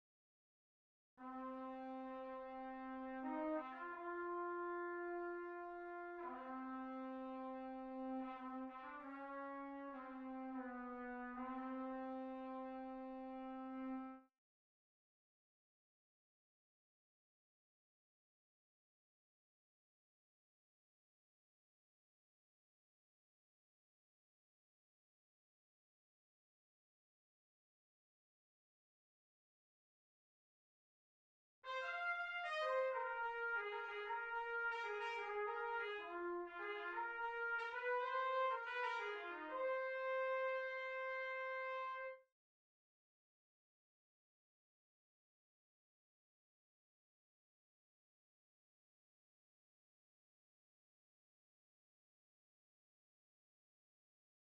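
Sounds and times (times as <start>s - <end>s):
Bb trumpet: 1.2s - 14.3s, 31.6s - 42.3s.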